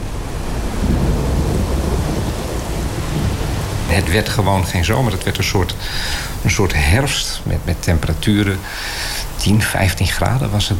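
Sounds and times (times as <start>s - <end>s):
deep rolling thunder: 0.0s - 5.8s
heavy rain pouring: 0.0s - 10.7s
speech: 4.0s - 10.7s.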